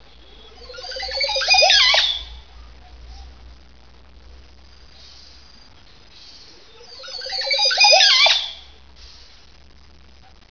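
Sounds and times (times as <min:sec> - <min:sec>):
bird twittering: 0:00.3 - 0:02.5, 0:04.8 - 0:09.4.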